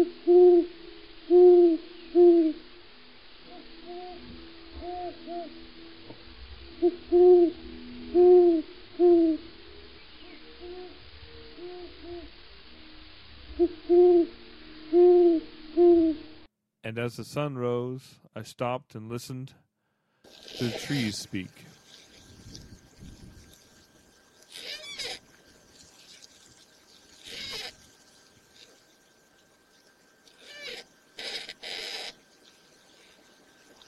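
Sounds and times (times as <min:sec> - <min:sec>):
owls hooting at the edge of a forest: 0:00.0 - 0:00.7, 0:01.3 - 0:02.6, 0:03.5 - 0:05.6, 0:06.8 - 0:09.5, 0:10.2 - 0:12.4, 0:13.5 - 0:16.2, 0:24.4 - 0:25.3, 0:27.1 - 0:29.2, 0:30.2 - 0:33.8
speech: 0:17.0 - 0:19.6, 0:20.6 - 0:21.7.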